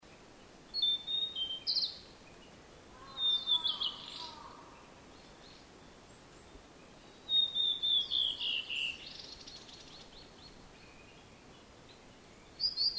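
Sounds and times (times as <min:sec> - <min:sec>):
Blue-and-white flycatcher singing descending whistles and a rasping buzz: 0:00.7 - 0:02.0, 0:07.3 - 0:10.0, 0:12.5 - 0:12.9.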